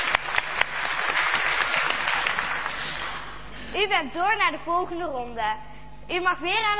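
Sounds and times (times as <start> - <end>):
audience applause: 0.0 - 3.5
speech: 3.8 - 6.7.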